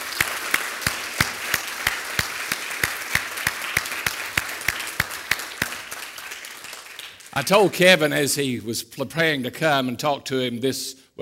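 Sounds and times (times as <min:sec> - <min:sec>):
audience crowd clapping: 0:00.0 - 0:07.9
speech: 0:07.4 - 0:11.2.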